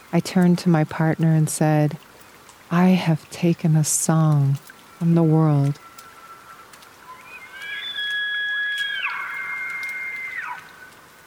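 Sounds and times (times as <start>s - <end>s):
speech: 0.1s - 2.1s, 2.7s - 5.9s
elk bugling: 5.7s - 11.2s.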